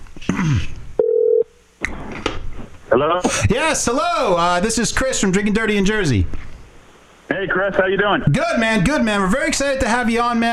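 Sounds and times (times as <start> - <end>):
speech: 0.2 - 0.8, 3.0 - 6.5, 7.4 - 10.5
phone call ringing tone: 1.0 - 1.5.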